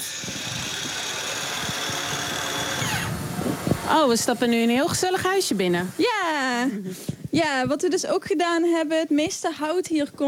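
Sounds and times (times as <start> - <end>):
droning power-tool or sawing during construction of an outdoor kitchen: 0.0 - 6.6
speech: 3.9 - 10.2.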